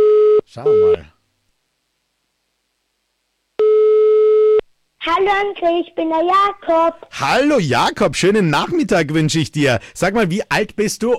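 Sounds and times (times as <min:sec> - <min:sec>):
telephone call ringing with a pure steady electronic tone: 0:00.0 - 0:01.0, 0:03.6 - 0:04.6
speech: 0:00.6 - 0:01.2, 0:05.2 - 0:11.1.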